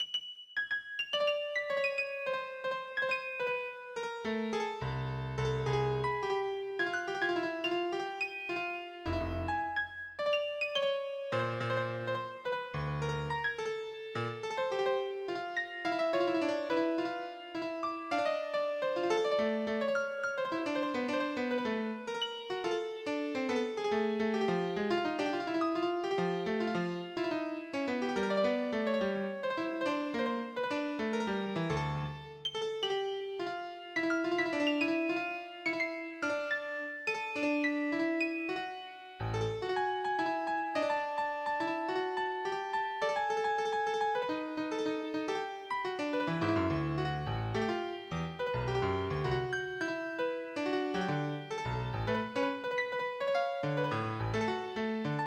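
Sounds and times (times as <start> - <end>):
habanera piano piece: 0.0 - 55.2.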